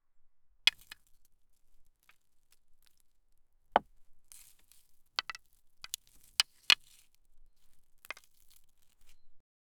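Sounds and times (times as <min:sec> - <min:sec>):
wooden sticks being taken: 0:00.7 - 0:01.0, 0:04.3 - 0:09.1.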